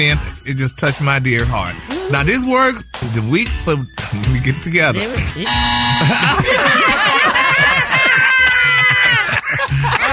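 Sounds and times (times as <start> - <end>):
speech: 0.0 - 7.4
electronic buzzer: 5.4 - 6.4
people laughing: 6.0 - 10.1.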